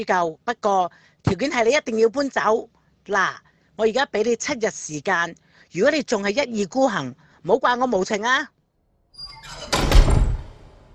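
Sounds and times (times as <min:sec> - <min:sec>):
speech: 0:00.0 - 0:08.6
room door slamming shut hard: 0:09.2 - 0:10.9.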